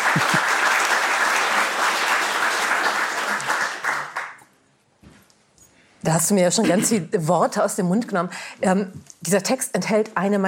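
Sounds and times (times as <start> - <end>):
audience applause: 0.0 - 4.4
speech: 0.2 - 0.5, 6.0 - 10.4.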